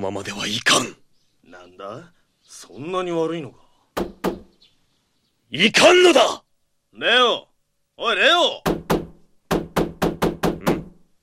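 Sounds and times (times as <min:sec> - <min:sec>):
speech: 0:00.0 - 0:04.2, 0:05.5 - 0:06.4, 0:07.0 - 0:08.8
fist pounding hard on a door: 0:04.0 - 0:04.5, 0:08.6 - 0:10.9.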